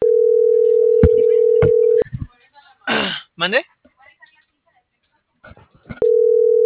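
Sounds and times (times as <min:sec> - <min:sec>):
telephone line tone while dialing a number: 0:00.0 - 0:02.0, 0:06.0 - 0:06.6
speech: 0:03.4 - 0:03.7.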